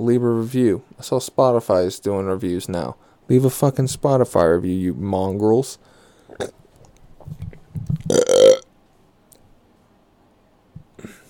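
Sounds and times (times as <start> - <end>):
speech: 0.0 - 6.6
loud drawn-out burp: 8.1 - 8.6.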